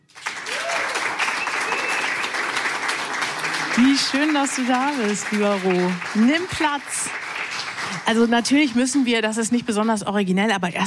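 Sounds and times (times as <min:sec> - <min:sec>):
audience applause welcoming a musician guest: 0:00.0 - 0:09.0
faint whistle: 0:01.3 - 0:02.3
speech: 0:03.8 - 0:07.2, 0:07.9 - 0:10.8.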